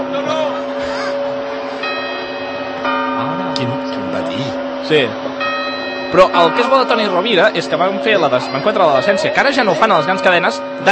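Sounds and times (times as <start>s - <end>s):
clock bell chiming the quarters: 0.0s - 10.9s
voices murmuring: 0.0s - 10.9s
speech: 4.9s - 5.3s, 6.1s - 10.9s.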